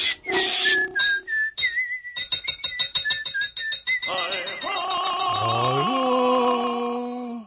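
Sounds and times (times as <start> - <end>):
person whistling a tune: 0.0 - 5.7
rhythmic scrubbing strokes: 0.0 - 7.2.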